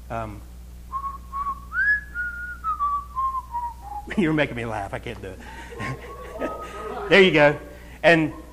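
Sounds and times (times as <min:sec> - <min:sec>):
speech: 0:00.1 - 0:00.5, 0:04.1 - 0:08.4
person whistling a short wavering melody: 0:00.9 - 0:04.2
laughter: 0:05.3 - 0:08.5.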